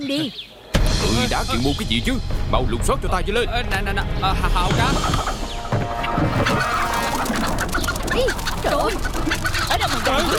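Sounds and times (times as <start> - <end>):
speech: 0.0 - 5.4, 6.2 - 6.9, 8.2 - 10.3
many chickens clucking: 4.6 - 10.3.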